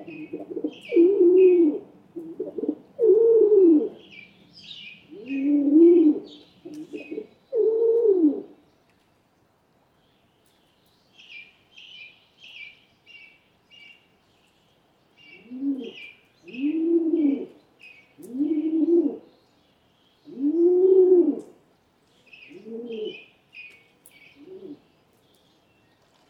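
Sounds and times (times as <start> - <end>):
Rock Pigeon cooing: 0.0 - 4.1, 5.1 - 8.6, 15.3 - 17.6, 18.2 - 19.3, 20.3 - 21.6, 22.5 - 23.3, 24.4 - 24.9
small birds chirping: 3.9 - 7.7, 8.5 - 26.2.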